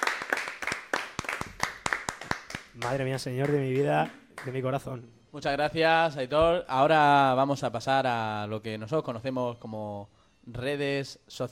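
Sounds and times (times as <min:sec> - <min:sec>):
audience applause: 0:00.0 - 0:04.5
speech: 0:02.8 - 0:11.4.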